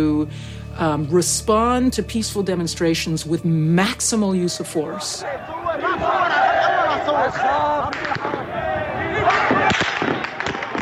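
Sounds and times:
speech: 0.0 - 8.5
crowd shouting during an uprising: 4.5 - 10.8
gunfire as armed men shoot at civilians: 7.9 - 8.5, 9.2 - 10.8.

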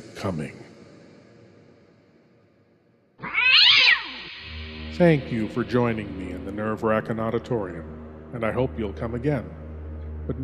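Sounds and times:
speech: 0.2 - 0.6, 5.0 - 9.6
angry cat yowling: 3.2 - 4.5.

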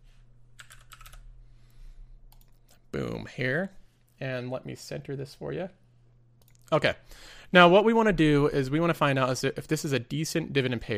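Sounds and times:
low steady hum: 0.0 - 10.9
typing on a computer keyboard entering a stock ticker: 0.6 - 1.2
speech: 3.0 - 5.8, 6.7 - 10.9.

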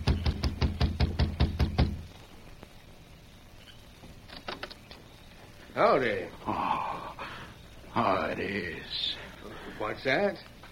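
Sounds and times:
loud knocking on a wooden door: 0.0 - 2.0
speech: 5.8 - 6.8, 8.0 - 9.2, 9.8 - 10.5.

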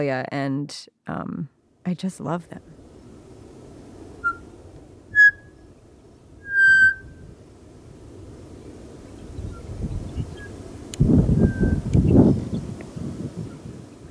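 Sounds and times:
speech: 0.0 - 2.8
low rumble of wind noise: 2.5 - 14.0
pied butcherbird singing flute-like whistled notes: 4.2 - 4.5, 5.1 - 5.6, 6.4 - 7.2, 11.4 - 11.8.

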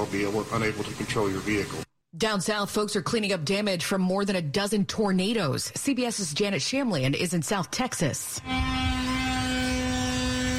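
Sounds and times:
speech: 0.0 - 9.5
chainsaws and power tools cutting debris: 8.4 - 10.5.

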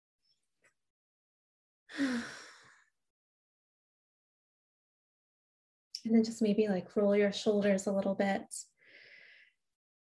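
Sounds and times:
speech: 1.9 - 2.4, 6.0 - 8.7
deep breath during a guided group relaxation exercise: 1.9 - 2.9, 8.8 - 9.6.

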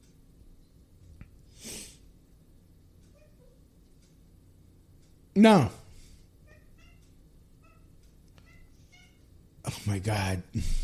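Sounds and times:
cat crying in short plaintive meows: 3.1 - 3.6, 6.4 - 9.3
speech: 5.4 - 5.8, 10.0 - 10.8.

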